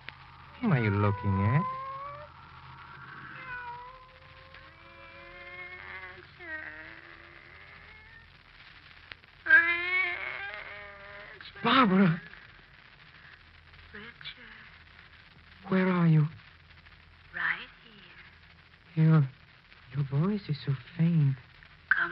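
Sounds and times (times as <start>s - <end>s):
faint low rumble: 0.0s - 22.1s
cat meowing in long wavering cries: 0.1s - 8.2s, 9.4s - 12.2s
speech: 0.6s - 1.8s.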